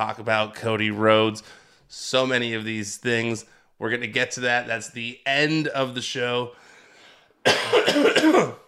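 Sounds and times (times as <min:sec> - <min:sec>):
speech: 0:00.0 - 0:06.7, 0:07.4 - 0:08.6
harsh coughing: 0:07.4 - 0:08.6
throat clearing: 0:07.5 - 0:08.6.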